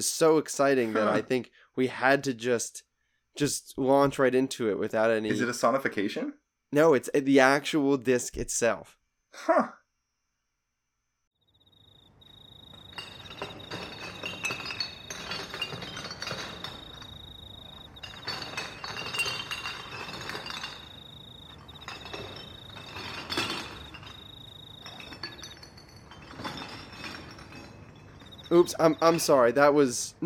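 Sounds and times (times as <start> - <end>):
speech: 0.0 - 9.8, 28.6 - 30.2
glass bottles clinking together: 12.4 - 29.5.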